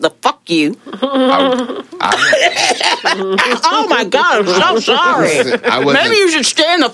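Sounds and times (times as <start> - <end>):
speech: 0.0 - 6.9
laughter: 0.9 - 6.2
person forcing an exaggerated theatrical cough: 1.4 - 3.1.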